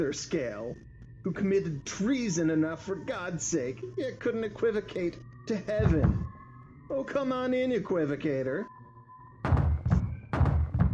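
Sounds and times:
speech: 0:00.0 - 0:06.2, 0:06.9 - 0:08.7
heavy knocking on a door: 0:05.8 - 0:06.3, 0:09.5 - 0:10.9.

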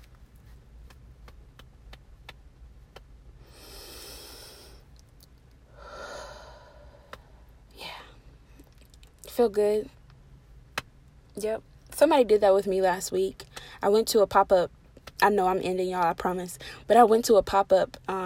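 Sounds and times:
group taking deep breaths: 0:03.4 - 0:04.9, 0:05.7 - 0:07.6
speech: 0:09.4 - 0:10.0, 0:11.4 - 0:18.2.

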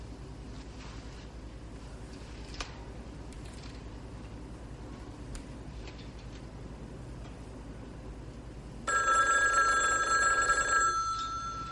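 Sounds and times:
telephone bell ringing: 0:08.9 - 0:11.7.

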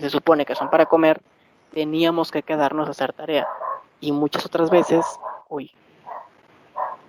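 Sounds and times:
speech: 0:00.0 - 0:05.8
dog barking: 0:00.6 - 0:01.1, 0:03.4 - 0:03.9, 0:04.8 - 0:07.0.

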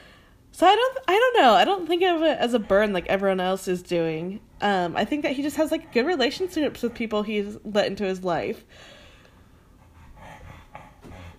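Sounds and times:
low hum: 0:00.0 - 0:11.3
speech: 0:00.6 - 0:09.0
female dog panting heavily: 0:01.4 - 0:08.5, 0:09.4 - 0:11.3.

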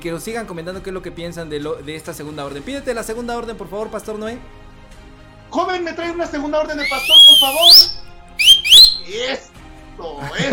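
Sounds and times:
speech: 0:00.0 - 0:04.7, 0:05.5 - 0:08.0, 0:09.1 - 0:10.5
person whistling with upward-sliding pitch: 0:06.8 - 0:09.2.

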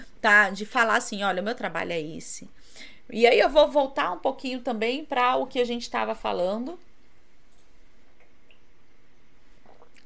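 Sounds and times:
steady low hiss: 0:00.0 - 0:10.0
speech: 0:00.2 - 0:06.9
person drinking water with soft wet sips: 0:09.4 - 0:10.0.

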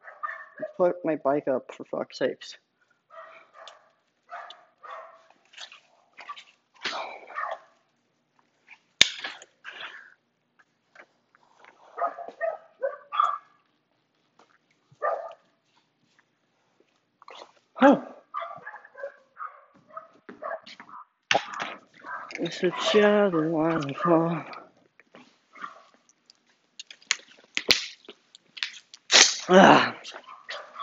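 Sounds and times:
dogs barking and yipping excitedly at someone coming home: 0:00.0 - 0:00.9, 0:03.0 - 0:07.9, 0:11.9 - 0:13.7, 0:14.9 - 0:15.6, 0:18.0 - 0:24.6, 0:25.4 - 0:26.2, 0:30.1 - 0:30.8
speech: 0:00.8 - 0:02.6, 0:22.6 - 0:24.6, 0:29.5 - 0:29.9.

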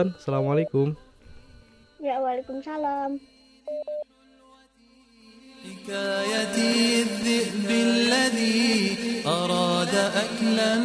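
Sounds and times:
speech: 0:00.0 - 0:01.0, 0:02.0 - 0:04.1, 0:05.6 - 0:10.8
short loud electronic phone beeps: 0:03.7 - 0:04.0.

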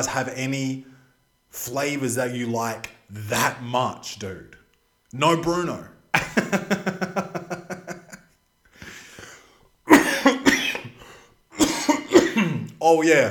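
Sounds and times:
speech: 0:00.0 - 0:00.9, 0:01.5 - 0:07.4, 0:12.9 - 0:13.2
rhythmic laughter-like vocal pulses: 0:06.2 - 0:08.3
person coughing in harsh broadband bursts: 0:09.9 - 0:11.0, 0:11.6 - 0:12.7.

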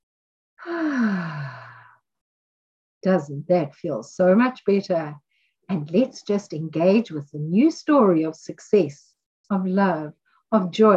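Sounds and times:
speech: 0:00.6 - 0:01.4, 0:03.0 - 0:10.9
person exhaling deeply through the mouth during a guided centering exercise: 0:00.6 - 0:02.0.

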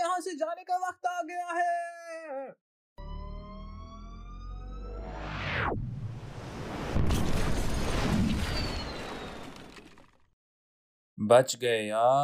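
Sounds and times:
speech: 0:00.2 - 0:01.7, 0:11.3 - 0:12.2
rising electronic whine: 0:03.1 - 0:10.2
loud deep explosion rumbling: 0:05.7 - 0:09.9.

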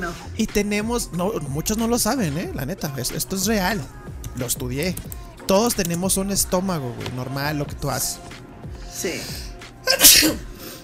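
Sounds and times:
speech: 0:00.0 - 0:08.4, 0:09.0 - 0:10.5
person sneezing: 0:09.8 - 0:10.8.

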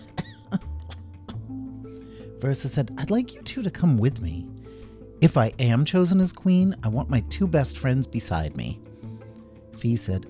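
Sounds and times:
short dry coughs: 0:00.0 - 0:01.4
speech: 0:02.4 - 0:04.6, 0:05.2 - 0:08.8, 0:09.8 - 0:10.2.

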